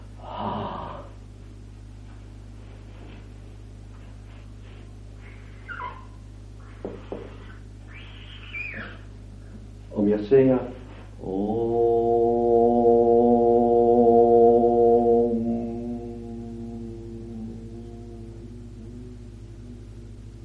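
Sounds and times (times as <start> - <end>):
steady low electrical hum: 0.0 - 20.4
faint rustling breaths: 2.0 - 5.7
speech: 10.1 - 11.6.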